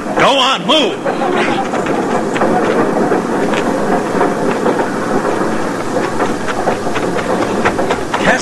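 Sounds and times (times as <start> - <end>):
steam train pulling out of a station: 0.0 - 8.4
speech: 0.2 - 2.8.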